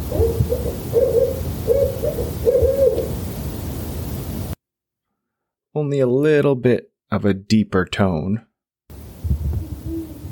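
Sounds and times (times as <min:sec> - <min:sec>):
great horned owl hooting low soft notes: 0:00.1 - 0:03.3, 0:09.5 - 0:10.3
speech: 0:05.8 - 0:08.5.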